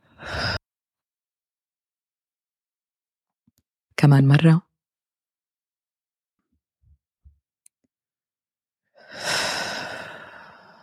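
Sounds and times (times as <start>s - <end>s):
deep breath during a guided breathing exercise: 0.1s - 0.6s, 9.0s - 10.8s
speech: 4.0s - 4.7s.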